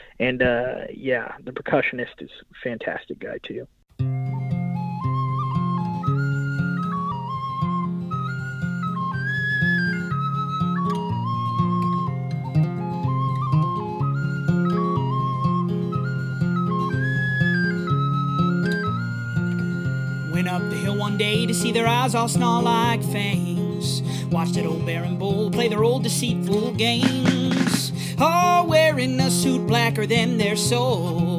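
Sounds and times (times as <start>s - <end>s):
speech: 0.2s - 3.8s, 21.6s - 31.3s
pan whistle melody played by a musician from Scotland: 4.0s - 23.6s, 26.5s - 31.1s
full steady music backing: 4.0s - 31.3s.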